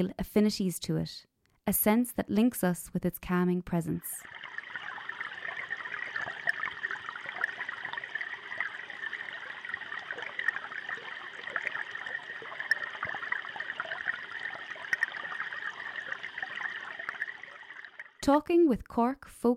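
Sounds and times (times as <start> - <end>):
speech: 0.0 - 4.5, 18.3 - 19.5
river water flowing through a city: 4.2 - 18.2.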